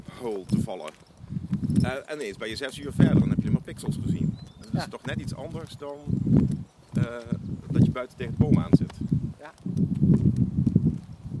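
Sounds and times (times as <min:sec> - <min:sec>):
speech: 0:00.2 - 0:10.4
footsteps walking into a garden: 0:00.3 - 0:03.3, 0:06.3 - 0:11.3.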